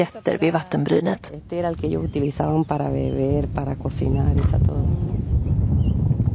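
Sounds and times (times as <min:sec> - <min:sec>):
speech: 0:00.0 - 0:04.9
wind blowing in a steady rushing roar: 0:00.0 - 0:06.3.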